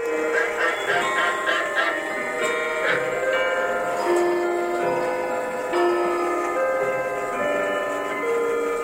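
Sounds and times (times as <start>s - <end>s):
many clocks ticking in a clock shop in Chehalis: 0.0s - 8.8s.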